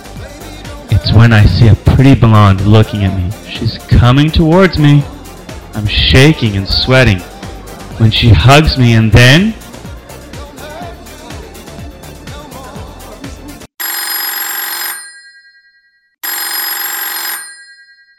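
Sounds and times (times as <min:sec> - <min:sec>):
upbeat rhythmic music: 0:00.0 - 0:13.7
speech: 0:01.2 - 0:05.2, 0:05.8 - 0:07.3, 0:08.0 - 0:09.6
telephone bell ringing with a metallic trill: 0:13.8 - 0:18.1.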